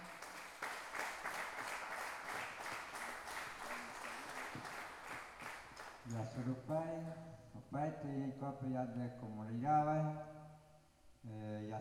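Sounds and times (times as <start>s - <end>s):
audience applause at a pluricultural gathering of indigenous language communities in Salta: 0.0s - 6.1s
speech: 6.1s - 10.3s, 11.2s - 11.7s.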